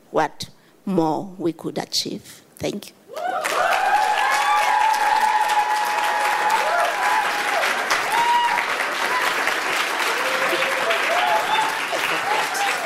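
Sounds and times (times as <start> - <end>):
speech: 0.1 - 3.4
audience applause for a speaker: 3.2 - 12.8.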